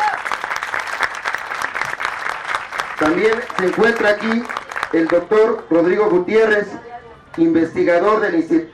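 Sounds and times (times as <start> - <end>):
audience applauding at a university talk: 0.0 - 5.7
speech: 3.0 - 8.7.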